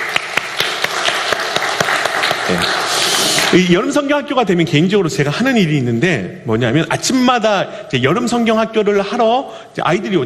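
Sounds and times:
audience applauding: 0:00.0 - 0:03.7
speech: 0:03.5 - 0:10.2.

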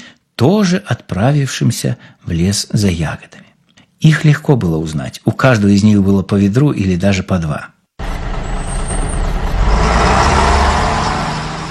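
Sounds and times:
speech: 0:00.4 - 0:07.7
heavy bus rumbling in a forest: 0:08.0 - 0:11.7
high bus brake squeal: 0:08.0 - 0:11.7.

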